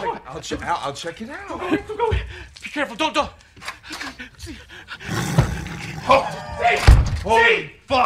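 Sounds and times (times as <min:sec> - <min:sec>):
speech: 0:00.3 - 0:08.0
tiger roaring: 0:05.0 - 0:06.6.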